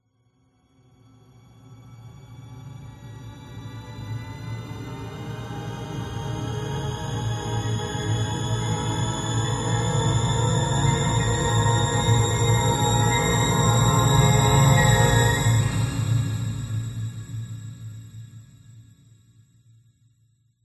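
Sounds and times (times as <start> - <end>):
ascending discordant horror synth riser: 6.8 - 16.9.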